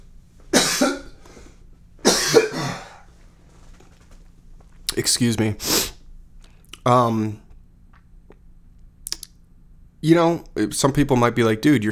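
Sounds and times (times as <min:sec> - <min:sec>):
harsh coughs: 0:00.5 - 0:03.1
speech: 0:05.0 - 0:05.9, 0:06.8 - 0:07.4, 0:10.0 - 0:11.9.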